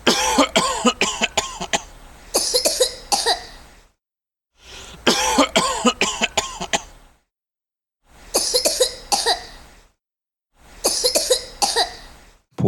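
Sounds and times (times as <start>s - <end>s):
person coughing: 0.0s - 3.5s, 5.1s - 6.9s, 8.4s - 9.6s, 10.9s - 12.0s.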